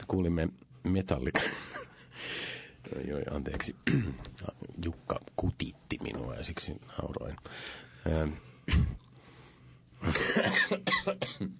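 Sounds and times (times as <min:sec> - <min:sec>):
speech: 0:00.1 - 0:01.7, 0:02.9 - 0:09.0, 0:10.0 - 0:11.5
person coughing sharply: 0:03.8 - 0:04.2, 0:10.0 - 0:11.5.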